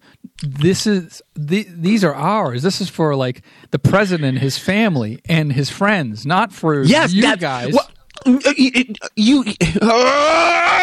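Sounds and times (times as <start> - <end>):
speech: 0.4 - 10.8
person muttering: 4.1 - 4.5, 6.9 - 10.6
frustrated yell: 9.8 - 10.8.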